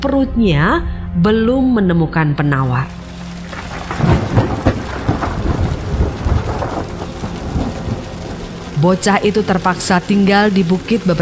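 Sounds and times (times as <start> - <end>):
speech: 0.0 - 3.0, 8.8 - 11.1
low rumbles of thunder: 0.0 - 11.1
steady heavy rain: 2.6 - 11.1.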